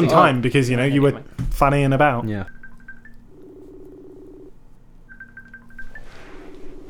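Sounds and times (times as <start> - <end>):
speech: 0.0 - 2.6
phone electronic keypad beeps dialing a number: 2.4 - 4.5, 5.1 - 6.8
phone ringing tone: 2.4 - 6.8.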